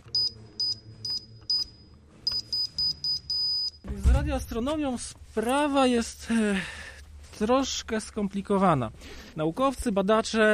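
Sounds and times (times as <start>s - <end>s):
low hum: 0.0s - 10.5s
alarm system beeping while being disarmed: 0.2s - 3.8s
speech: 3.9s - 10.5s.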